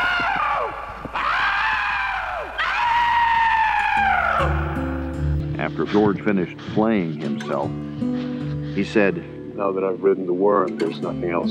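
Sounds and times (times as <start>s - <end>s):
man screaming in long strained howls: 0.0s - 5.2s
speech: 5.8s - 8.2s, 8.8s - 11.5s.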